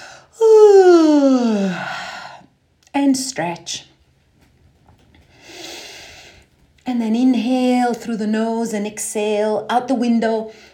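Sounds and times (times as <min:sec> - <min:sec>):
person yawning during a breathing and stretching exercise: 0:00.3 - 0:02.3
speech: 0:03.1 - 0:03.9, 0:06.9 - 0:10.7.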